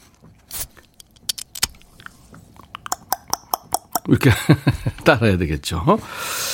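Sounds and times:
beer can being opened: 0:00.5 - 0:04.1
laughter: 0:04.1 - 0:05.0
speech: 0:04.1 - 0:06.4.

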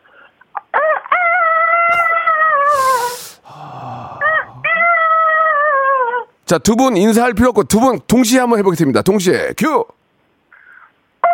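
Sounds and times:
caller on the phone imitating a chicken clucking: 0:01.7 - 0:06.1
speech: 0:06.5 - 0:10.0.

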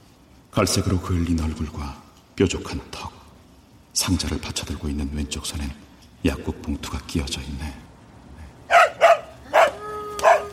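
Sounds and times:
speech: 0:00.6 - 0:03.2, 0:04.0 - 0:07.9
dog barking: 0:08.7 - 0:10.5.

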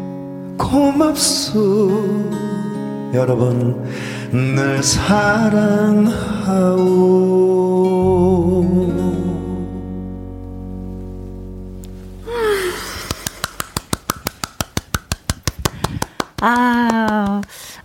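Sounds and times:
speech: 0:00.7 - 0:09.3
single person clapping hands crisply: 0:12.8 - 0:17.7.

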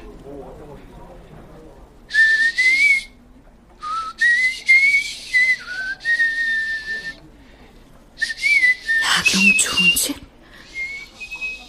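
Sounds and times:
quiet speech murmur: 0:00.0 - 0:11.6
speech: 0:00.3 - 0:01.4
person whistling a tune: 0:02.1 - 0:03.2, 0:03.8 - 0:07.2, 0:08.2 - 0:10.0, 0:10.6 - 0:11.6.

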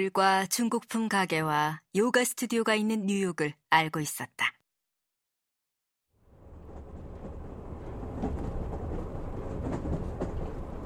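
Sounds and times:
speech: 0:00.0 - 0:04.6
New York subway train on the 2 line rushing along the tracks: 0:06.2 - 0:10.8.

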